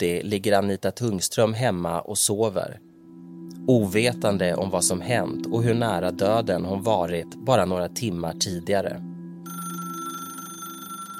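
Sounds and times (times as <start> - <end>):
speech: 0.0 - 2.9, 3.7 - 9.1
telephone ringing with a steady electronic trill: 9.4 - 11.1.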